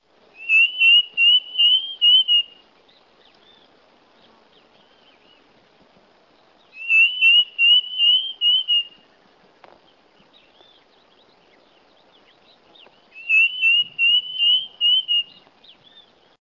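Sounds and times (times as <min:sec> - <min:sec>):
Tapera naevia calling: 0:00.4 - 0:02.6, 0:06.7 - 0:09.1, 0:13.1 - 0:16.1.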